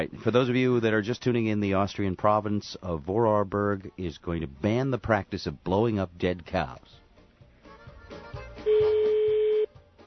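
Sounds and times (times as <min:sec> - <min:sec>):
speech: 0:00.0 - 0:07.0
telephone ringing unanswered on a call to Austria: 0:08.7 - 0:09.7.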